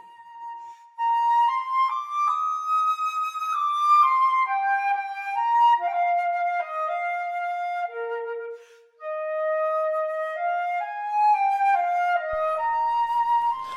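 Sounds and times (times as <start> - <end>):
solo flute playing a lyrical melody from an opera: 0.0 - 13.7.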